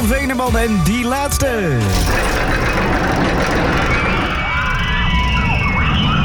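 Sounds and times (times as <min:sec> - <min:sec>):
speech: 0:00.1 - 0:04.0
figure-eight roller coaster racing past at an amusement park in Appelscha: 0:01.9 - 0:06.2
roller coaster squealing whistling tones: 0:01.9 - 0:06.2.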